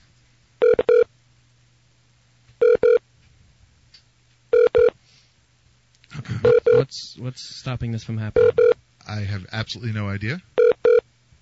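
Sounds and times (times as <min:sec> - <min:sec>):
faint steady low hum: 0:00.0 - 0:11.4
telephone keypad tones as a number is dialed: 0:00.6 - 0:01.1, 0:02.6 - 0:03.0, 0:04.6 - 0:05.0, 0:06.5 - 0:06.8, 0:08.4 - 0:08.8, 0:10.6 - 0:11.0
speech: 0:06.8 - 0:10.5.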